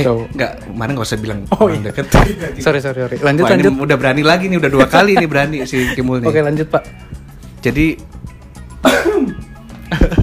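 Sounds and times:
speech: 0.0 - 8.1, 8.8 - 10.2
laughter: 4.6 - 6.4
person coughing: 8.8 - 9.5.

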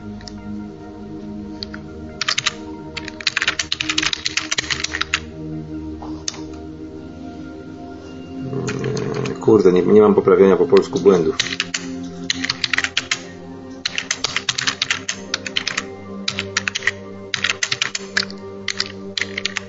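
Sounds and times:
typing a message on a computer keyboard: 1.6 - 5.2, 10.8 - 19.6
speech: 9.5 - 11.6.

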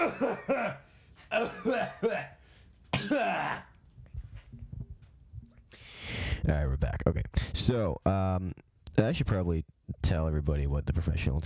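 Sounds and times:
person clearing throat to dislodge something stuck in the throat: 0.0 - 2.4, 3.0 - 3.7
person coughing to dislodge something stuck in the throat: 0.0 - 2.4, 3.0 - 3.7
speech: 0.0 - 3.7, 6.1 - 11.4.

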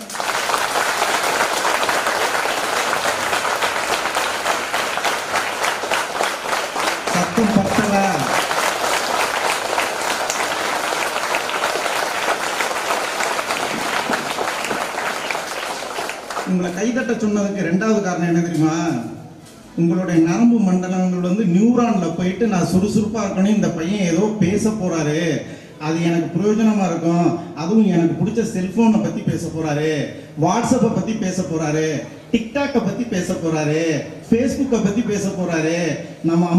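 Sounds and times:
large auditorium audience applauding: 0.0 - 16.8
speech: 16.8 - 19.1, 19.8 - 36.5.

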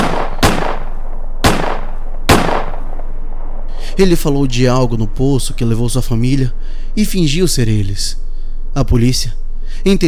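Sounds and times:
sharp loud gunshots with tail: 0.0 - 3.7
speech: 4.0 - 10.0.

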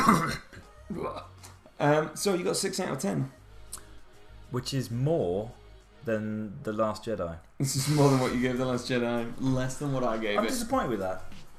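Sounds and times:
person coughing into a microphone: 0.0 - 0.6
speech: 0.1 - 3.4, 4.5 - 11.4.

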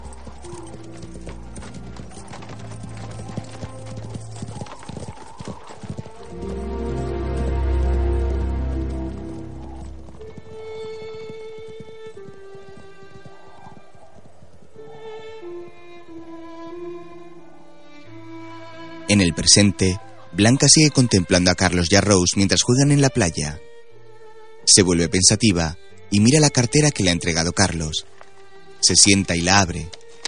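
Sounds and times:
horse hooves clip-clopping as riders leave across a deserted mine: 0.0 - 15.4, 26.2 - 30.2
speech: 19.2 - 23.7, 24.7 - 28.2, 28.8 - 30.0.

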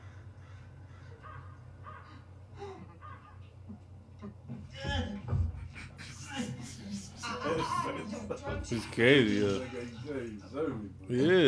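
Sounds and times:
crows cawing: 0.0 - 3.7
laughter: 1.2 - 11.4
speech: 8.3 - 11.4.

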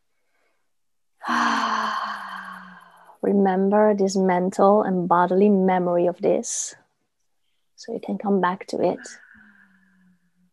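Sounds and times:
person taking a deep full breath: 1.2 - 3.2
speech: 3.2 - 6.8, 7.8 - 9.2.

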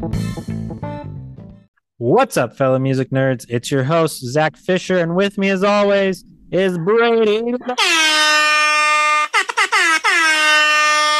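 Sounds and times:
speech: 0.0 - 0.5, 2.0 - 8.0
air horn blaring: 7.8 - 11.1.

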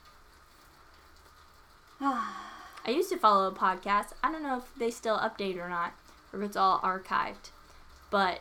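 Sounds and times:
soft steady rain outside a window: 0.0 - 8.3
speech: 2.9 - 8.3.

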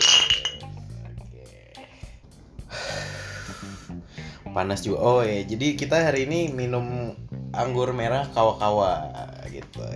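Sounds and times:
drinking glasses clinking in a toast: 0.0 - 0.8
speech: 4.6 - 9.7.

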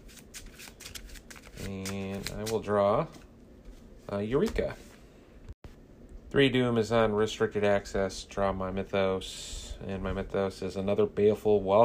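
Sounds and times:
playing cards being shuffled into a deck: 0.0 - 3.3
speech: 1.6 - 3.2, 4.1 - 4.9, 6.3 - 11.8.

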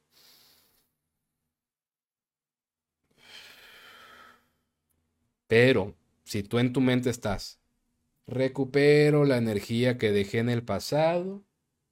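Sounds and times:
slow deep breath drawn in during a breathing exercise: 3.1 - 4.6
speech: 5.5 - 7.6, 8.3 - 11.5.

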